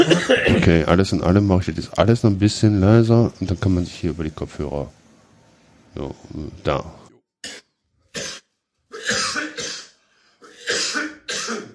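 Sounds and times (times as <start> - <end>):
harsh coughs overdriving the microphone: 0.0 - 0.7, 7.4 - 11.7
speech: 0.0 - 5.0, 6.0 - 7.6.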